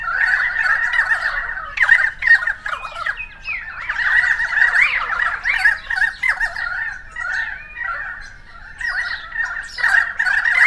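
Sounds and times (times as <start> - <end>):
several currawongs squawking and chattering: 0.0 - 10.6.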